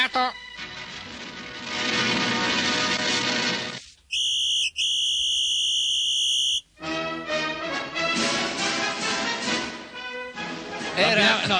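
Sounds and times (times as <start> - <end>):
music: 0.0 - 3.8, 6.8 - 11.5
speech: 0.1 - 0.8
two short bright whistled tones like Morse code signals: 4.1 - 6.7.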